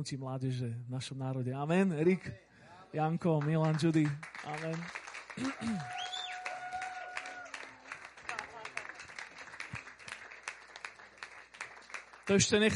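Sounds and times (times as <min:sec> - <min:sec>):
speech: 0:00.0 - 0:06.0, 0:12.3 - 0:12.7
audience applause: 0:03.4 - 0:12.7
person whooping: 0:05.4 - 0:07.8.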